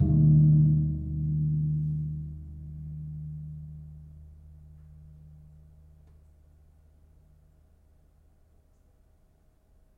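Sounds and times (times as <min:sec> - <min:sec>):
Gong Suwukan gamelan gong: 0:00.0 - 0:06.0.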